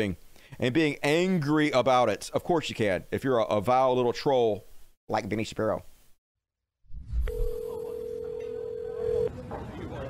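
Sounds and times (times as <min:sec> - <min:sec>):
speech: 0:00.0 - 0:05.9
phone ringing tone electronic beep: 0:07.3 - 0:09.3.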